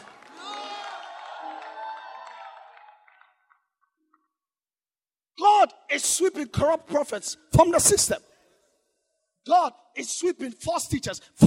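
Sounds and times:
audience shouting: 0.2s - 2.8s
speech: 5.4s - 8.3s, 9.5s - 11.4s.

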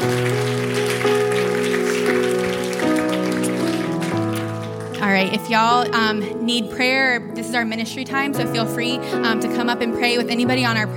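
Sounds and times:
crowd applause: 0.0s - 5.6s
keyboard or organ chords: 0.0s - 10.9s
speech: 5.3s - 10.9s.

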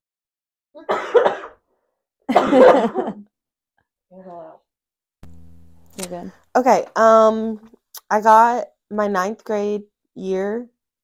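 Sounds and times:
speech: 0.8s - 1.3s, 2.5s - 3.3s, 6.0s - 10.7s
cough or throat-clearing: 0.8s - 1.6s, 2.3s - 3.3s.

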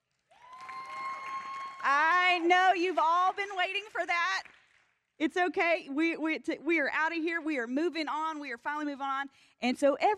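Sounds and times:
audience applause: 0.3s - 3.8s
speech: 1.8s - 4.6s, 5.2s - 10.1s.

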